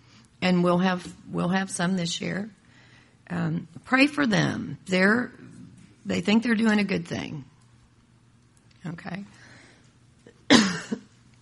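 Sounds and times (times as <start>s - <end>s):
speech: 0.4s - 2.6s, 3.3s - 7.5s, 8.8s - 9.4s
raspy throat clearing: 10.3s - 11.1s
person coughing: 10.3s - 11.2s.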